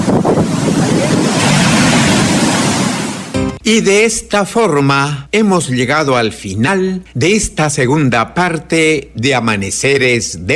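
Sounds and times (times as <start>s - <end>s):
wind buffeting the microphone: 0.0s - 3.3s
ocean surf breaking along the coast of Peru at dawn: 0.0s - 3.6s
speech: 3.7s - 10.5s.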